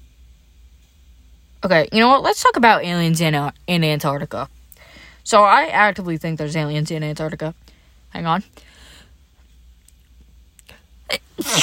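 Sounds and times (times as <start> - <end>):
speech: 1.6 - 4.6, 5.3 - 8.8
small mouth sounds: 11.1 - 11.6
sneeze: 11.1 - 11.6.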